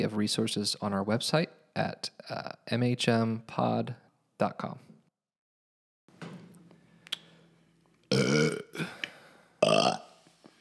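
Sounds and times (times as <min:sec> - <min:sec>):
speech: 0:00.0 - 0:04.9
loud throaty burping: 0:08.1 - 0:10.2.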